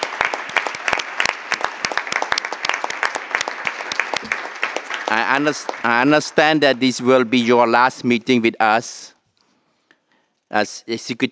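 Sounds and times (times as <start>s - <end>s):
audience applause: 0.0s - 7.5s
speech: 5.1s - 9.1s, 10.5s - 11.3s.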